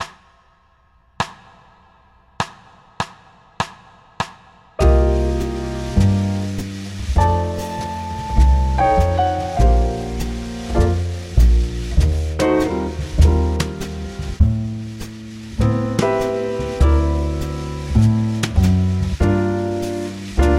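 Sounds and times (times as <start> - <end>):
jazz backing track for a solo section: 4.8 - 20.5.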